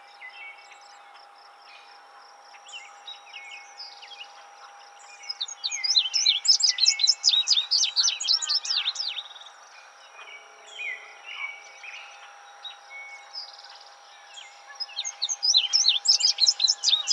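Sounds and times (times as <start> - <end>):
indigo bunting song: 0.0 - 17.1.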